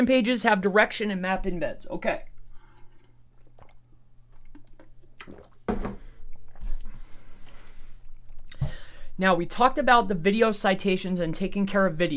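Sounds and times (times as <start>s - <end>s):
speech: 0.0s - 2.3s, 9.2s - 12.1s
person sipping and gulping water: 2.2s - 9.2s
slurp: 2.3s - 8.7s.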